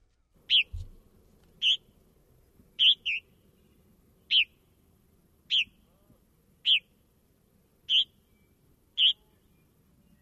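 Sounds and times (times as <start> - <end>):
quiet low background: 0.0 - 10.2
Purple Martin chirping calls played on air: 0.4 - 0.8, 1.6 - 1.9, 2.8 - 4.6, 5.5 - 5.9, 6.6 - 6.9, 7.8 - 10.2.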